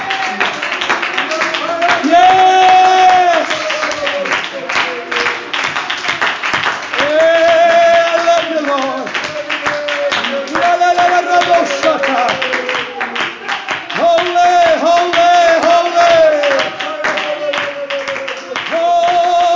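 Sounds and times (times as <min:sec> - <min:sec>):
sustained singing or shouted voices: 0:00.0 - 0:05.8, 0:06.9 - 0:19.5
crowd clapping: 0:00.0 - 0:19.5.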